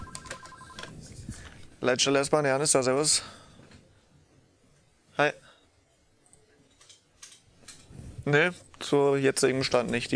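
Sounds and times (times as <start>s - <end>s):
telephone ringing with a warbling electronic tone: 0.0s - 0.9s
speech: 1.8s - 3.4s, 5.2s - 5.4s, 8.3s - 10.1s.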